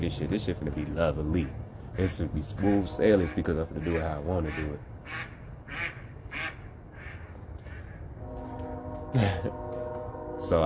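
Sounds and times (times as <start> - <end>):
speech: 0.0 - 5.9, 9.2 - 9.6, 10.5 - 10.6
duck quacking: 2.0 - 8.0
low tonal hum: 8.1 - 10.6.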